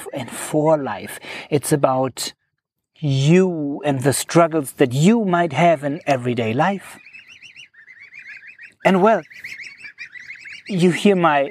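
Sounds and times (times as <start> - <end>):
speech: 0.1 - 2.4, 3.0 - 7.0, 8.8 - 9.6, 10.7 - 11.4
young ducklings or goslings calling: 5.6 - 11.4.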